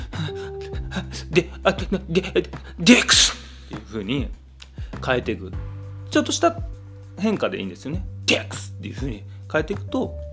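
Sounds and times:
speech: 1.0 - 4.4, 5.0 - 10.2
man imitating a sneeze: 2.8 - 3.6.

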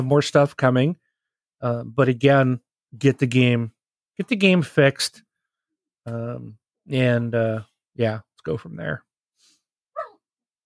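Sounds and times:
speech: 0.0 - 1.0, 1.6 - 5.2, 6.0 - 9.1
dogs whining or yelping while wrestling and playing: 10.0 - 10.2.

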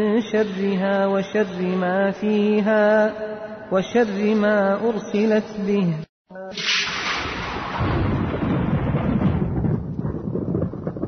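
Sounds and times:
speech: 0.0 - 6.8
thunder crack and deep rumble: 6.6 - 11.0.

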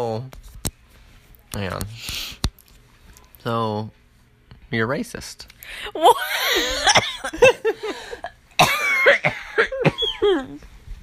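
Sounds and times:
speech: 0.0 - 0.5, 1.5 - 2.2, 3.4 - 4.0, 4.7 - 8.3, 9.0 - 10.7
person coughing: 6.0 - 10.6
person laughing: 6.0 - 10.6.

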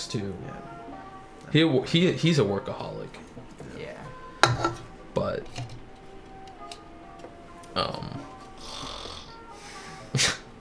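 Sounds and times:
speech: 0.1 - 0.7, 1.5 - 4.0, 4.6 - 5.8, 7.8 - 8.3, 10.1 - 10.4
person snoring: 7.8 - 10.4.

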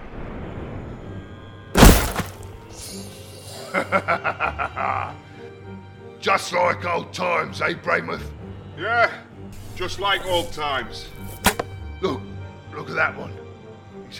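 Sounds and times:
heavy wooden rack slamming down and smashing: 1.8 - 2.5
speech: 3.7 - 4.5, 6.3 - 11.2, 12.0 - 12.3, 12.9 - 13.5
laughter: 3.7 - 5.3.

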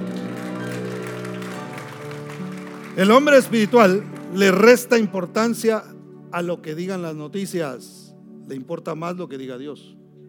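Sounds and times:
audience applauding: 0.0 - 4.8
sustained keyboard or organ chords: 0.0 - 10.2
speech: 3.0 - 10.0.

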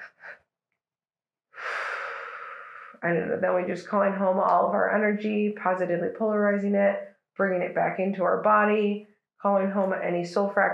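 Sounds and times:
soft exhaled breath in an energy-healing exercise: 1.6 - 3.0
speech: 3.0 - 10.7.

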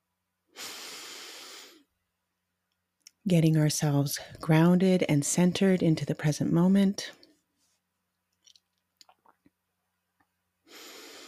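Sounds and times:
deep breath out during a guided breathing exercise: 0.5 - 1.9, 10.7 - 11.2
speech: 3.2 - 7.2.

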